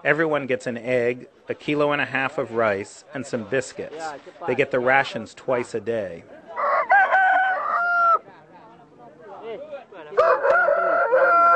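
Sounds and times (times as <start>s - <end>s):
speech: 0.0s - 6.4s
rooster crowing: 6.6s - 8.3s, 10.2s - 11.5s.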